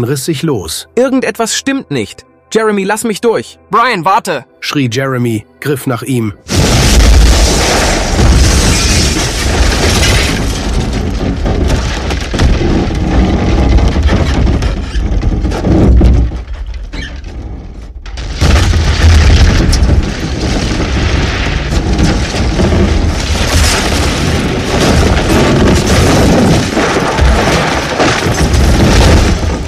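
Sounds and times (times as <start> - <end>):
speech: 0.0 - 6.6
explosion blast shattering windows with a deep boom: 6.5 - 16.4, 18.2 - 29.6
sustained roar of explosion debris: 6.5 - 29.6.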